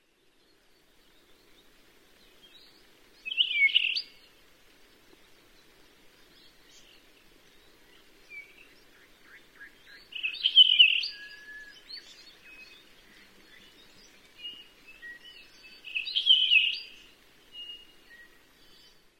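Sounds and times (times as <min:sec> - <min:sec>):
puaiohi calling: 0:03.3 - 0:04.2, 0:09.0 - 0:12.1, 0:15.8 - 0:17.0.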